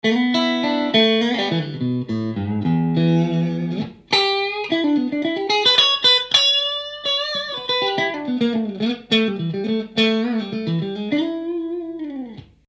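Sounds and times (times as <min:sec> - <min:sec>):
clean electric guitar on middle pickup: 0:00.0 - 0:12.6.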